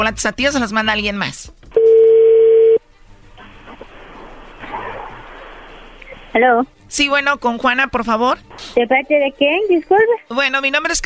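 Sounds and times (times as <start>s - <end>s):
speech: 0.0s - 1.6s, 6.4s - 11.0s
telephone line tone while a number is dialed: 1.8s - 2.8s
faint noisy telephone line hiss: 3.0s - 6.9s.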